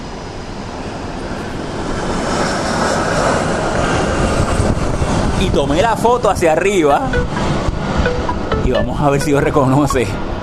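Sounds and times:
airplane passing overhead: 0.2 - 5.4
speech: 5.4 - 7.4, 8.7 - 10.3.

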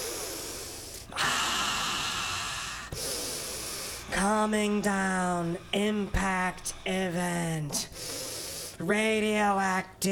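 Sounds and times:
heavy drawn-out breathing: 0.0 - 8.8
speech: 4.2 - 8.2, 8.8 - 10.1.

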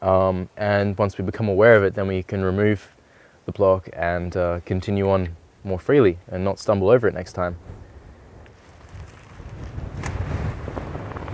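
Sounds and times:
speech: 0.0 - 7.8
gusty wind buffeting the microphone: 7.3 - 11.3.

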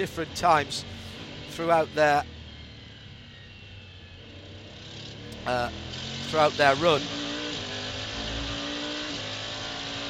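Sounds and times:
speech: 0.0 - 1.0, 1.6 - 2.4, 5.4 - 7.2
race car engine roaring, possibly with a broken exhaust manifold: 0.0 - 10.0.

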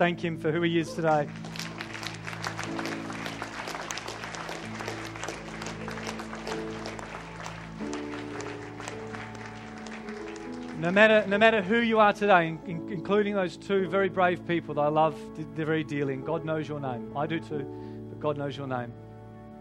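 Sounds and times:
speech: 0.0 - 1.6, 10.8 - 19.0
large crowd applauding: 0.8 - 12.1.

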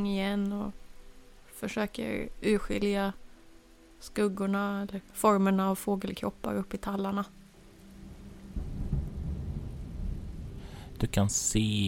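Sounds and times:
speech: 0.0 - 0.8, 1.6 - 3.2, 4.0 - 7.4, 11.0 - 11.8
soft hiss of rain: 0.0 - 11.8
low thunder rumbling over a pine forest: 7.6 - 11.8.

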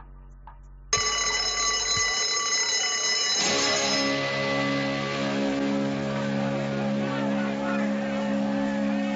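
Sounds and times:
school bell ringing for class: 1.0 - 8.0.

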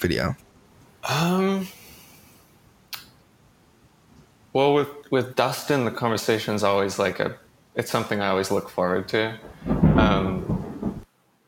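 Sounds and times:
speech: 0.0 - 0.4, 1.1 - 1.8, 4.5 - 10.4
deep loud rumble of thunder: 8.0 - 11.1.

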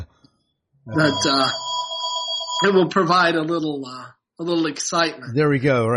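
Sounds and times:
speech: 0.9 - 1.6, 2.6 - 5.9
telephone ringing with high electronic warbling tones: 0.9 - 3.2.

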